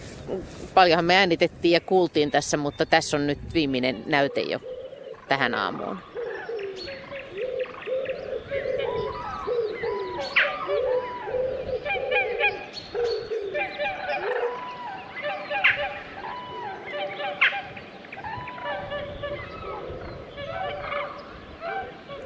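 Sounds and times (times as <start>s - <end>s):
speech: 0.3s - 4.7s, 5.3s - 6.1s
wood pigeon cooing: 3.7s - 22.2s
cranes trumpeting: 3.9s - 22.2s
sharp jackdaw calls: 4.0s - 22.2s
swans honking: 10.1s - 22.2s.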